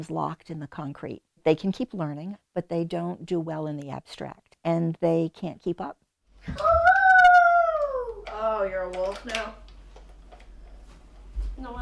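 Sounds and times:
speech: 0.0 - 6.8, 8.4 - 9.6, 11.6 - 11.8
child howling imitating a werewolf: 6.5 - 8.4.

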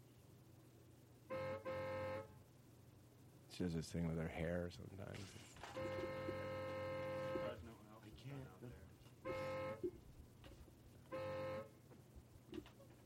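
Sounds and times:
car horn honking: 1.3 - 2.4, 5.8 - 7.7, 9.2 - 9.9, 11.1 - 11.7
speech: 3.5 - 6.5, 8.2 - 9.9.

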